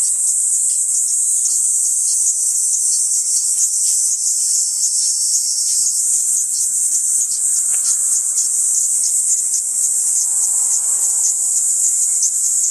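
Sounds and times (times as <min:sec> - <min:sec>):
Kaempfer cicada song: 0:00.0 - 0:12.7
soft ticks: 0:07.6 - 0:08.2.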